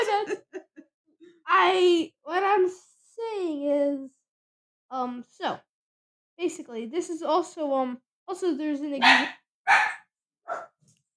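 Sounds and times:
laughter: 0:00.0 - 0:00.8
speech: 0:01.6 - 0:04.2, 0:04.9 - 0:05.7, 0:06.4 - 0:09.8
dog barking: 0:09.0 - 0:10.7.

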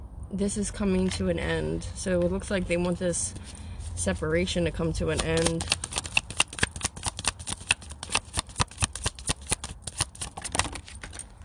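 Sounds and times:
speech: 0:00.3 - 0:05.8
tarot cards shuffled and handled: 0:05.0 - 0:11.4.

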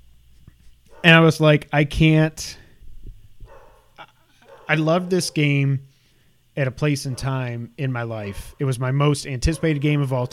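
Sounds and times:
dog barking: 0:00.9 - 0:01.2, 0:03.4 - 0:05.6, 0:07.0 - 0:07.4, 0:08.3 - 0:08.6, 0:09.4 - 0:10.3
speech: 0:01.0 - 0:02.6, 0:04.7 - 0:05.9, 0:06.6 - 0:10.3.

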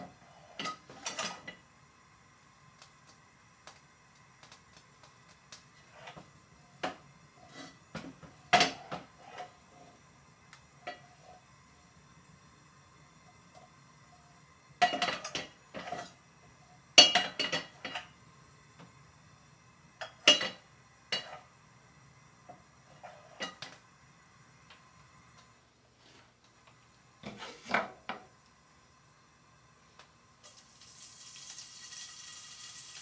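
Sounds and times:
soft hiss: 0:00.0 - 0:33.0
utensils clinking and scraping against pans and dishes while cooking pork and onions: 0:00.5 - 0:01.6, 0:08.5 - 0:09.6, 0:14.8 - 0:16.2, 0:17.0 - 0:18.2, 0:20.0 - 0:21.5, 0:23.0 - 0:23.7.

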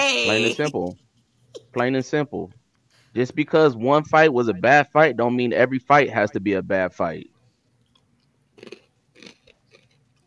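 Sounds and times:
speech: 0:00.1 - 0:07.3
laughter: 0:00.2 - 0:00.8
chewing food: 0:07.8 - 0:10.2
soft wet mouth sounds: 0:07.8 - 0:10.2
louder crunchy bites: 0:08.6 - 0:10.2.

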